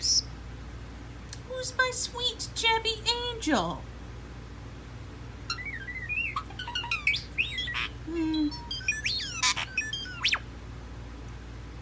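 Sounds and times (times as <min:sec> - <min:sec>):
low steady hum: 0:00.0 - 0:11.7
speech: 0:01.6 - 0:03.9
starling singing whistles clicks and buzzy notes: 0:05.5 - 0:10.5.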